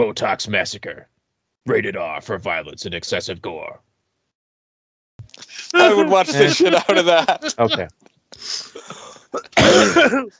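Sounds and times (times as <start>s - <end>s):
speech: 0.0s - 3.9s, 5.4s - 10.3s
laughter: 5.4s - 7.9s
harsh coughs: 8.7s - 10.3s.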